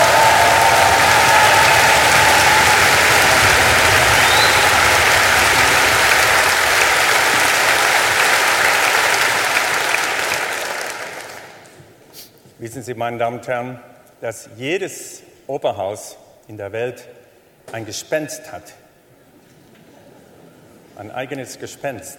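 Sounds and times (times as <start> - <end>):
concert audience in Dresden applauding: 0.0 - 11.8
speech: 12.9 - 18.8, 21.0 - 22.1.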